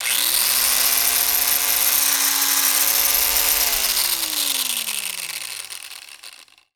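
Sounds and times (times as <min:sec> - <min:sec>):
rotary saw: 0:00.0 - 0:06.7.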